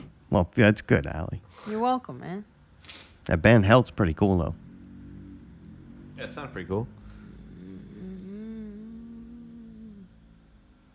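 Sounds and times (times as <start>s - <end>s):
speech: 0.3s - 4.6s, 6.2s - 7.0s
Mustang car engine roaring past outside: 3.9s - 10.7s.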